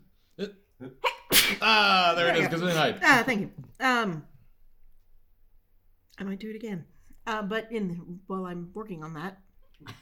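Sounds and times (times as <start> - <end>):
speech: 0.4 - 4.3, 6.2 - 10.0
person sneezing: 1.0 - 1.8.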